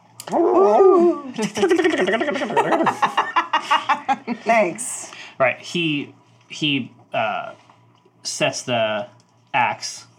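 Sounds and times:
person imitating wolf vocalizations with howl-like growl, yips and barks: 0.2s - 1.4s
speech: 0.3s - 3.2s, 4.3s - 7.6s, 8.2s - 10.1s
laughter: 1.3s - 4.4s.

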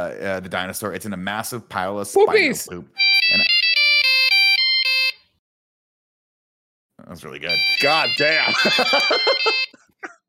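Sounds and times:
speech: 0.0s - 3.6s, 7.1s - 9.9s
electronic satellite phone ringtone with bright tonal beeps: 3.0s - 5.4s, 7.5s - 9.8s
laughter: 8.3s - 10.2s.

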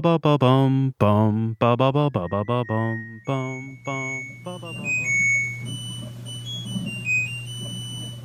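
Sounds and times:
speech: 0.0s - 5.9s
low appliance hum: 0.4s - 8.2s
shrill electronic appliance beep: 2.0s - 8.2s
thin high-pitched whining tones: 2.0s - 8.2s.

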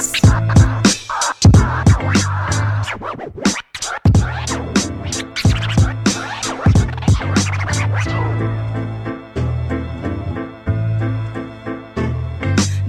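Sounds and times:
deep bass: 0.0s - 0.9s, 1.5s - 2.9s, 4.2s - 12.8s
turntable scratching in a hip hop intro: 0.0s - 9.1s
steady punchy hip hop beat: 0.0s - 10.7s.

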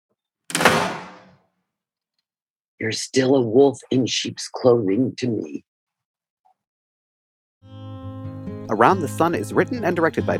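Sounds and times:
front door of a house closing thud: 0.5s - 1.4s
speech: 2.8s - 5.7s, 8.7s - 10.3s.

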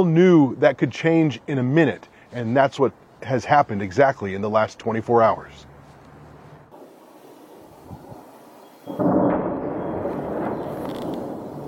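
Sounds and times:
speech: 0.0s - 5.7s
missile strikes exploding in a violent barrage: 8.9s - 11.6s.

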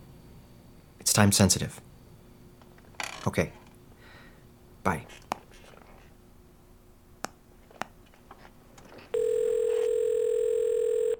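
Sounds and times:
speech: 1.1s - 1.9s, 3.2s - 3.6s, 4.8s - 5.3s
telephone ringing with a buzzy electronic tone: 9.1s - 11.1s.

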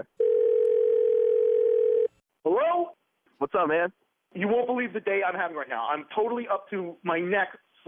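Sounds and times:
speech: 0.0s - 0.2s, 2.4s - 7.8s
telephone dial tone while call connects: 0.2s - 2.2s.

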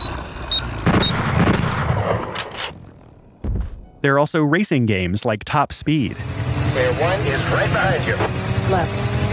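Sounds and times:
short high electronic beeps in an audio-only first-person shooter video game: 0.0s - 2.4s
manual bolt gun firing in an audio-only first-person shooter video game: 0.8s - 3.8s
speech: 4.0s - 9.2s.

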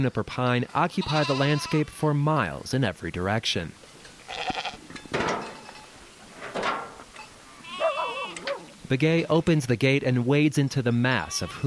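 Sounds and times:
speech: 0.0s - 4.6s, 8.9s - 11.6s
Angora goats and churro sheep bleating in a pallet corral on Black Mesa: 0.8s - 2.2s, 4.2s - 5.0s, 7.4s - 8.7s, 10.9s - 11.6s.

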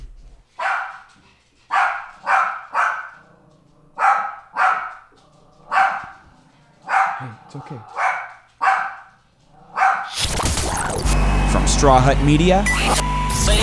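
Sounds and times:
dog barking: 0.5s - 10.2s
speech: 7.2s - 8.0s, 11.5s - 13.5s.

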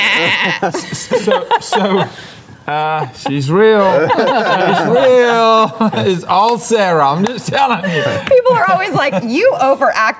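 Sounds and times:
person imitating a sheep bleating: 0.0s - 0.6s
laughter: 0.0s - 6.6s, 7.3s - 9.8s
speech: 0.2s - 10.1s.

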